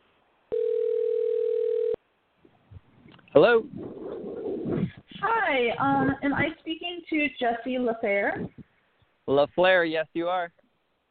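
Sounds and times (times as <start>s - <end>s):
telephone dial tone: 0.5s - 2.0s
speech: 3.3s - 4.0s, 4.7s - 8.6s, 9.3s - 10.6s.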